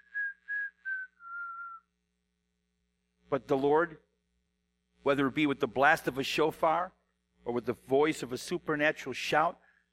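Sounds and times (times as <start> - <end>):
little whistle: 0.0 - 2.0
speech: 3.3 - 4.1, 5.0 - 9.6.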